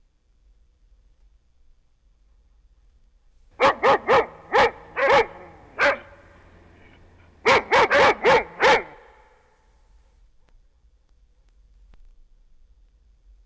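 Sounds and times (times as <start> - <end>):
dog barking: 3.6 - 9.4.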